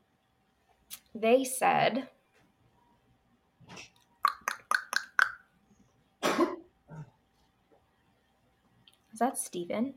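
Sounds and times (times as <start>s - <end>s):
speech: 1.2s - 2.2s, 9.2s - 9.9s
person coughing: 6.2s - 7.1s.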